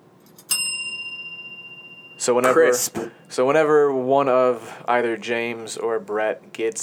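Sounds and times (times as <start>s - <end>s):
bell ringing: 0.5s - 3.4s
speech: 2.2s - 6.8s.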